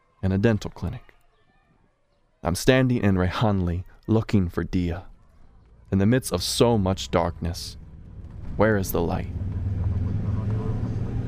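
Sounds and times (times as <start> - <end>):
speech: 0.2 - 1.1, 2.4 - 5.1, 5.9 - 7.8, 8.6 - 9.4
airplane engine drone: 6.9 - 11.2.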